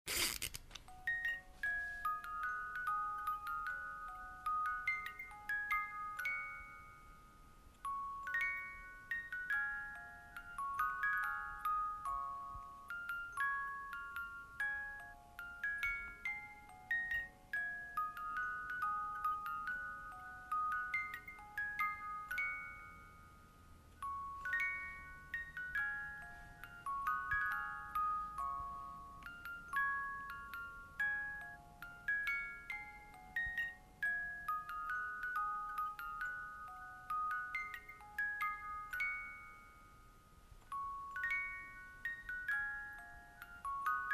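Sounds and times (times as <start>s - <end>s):
giraffe toy playing a lullaby: 0.8s - 44.1s.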